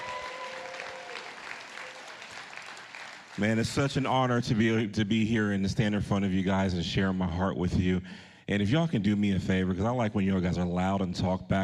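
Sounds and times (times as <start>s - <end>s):
church congregation applauding and cheering during a service: 0.0s - 4.3s
speech: 3.4s - 11.6s.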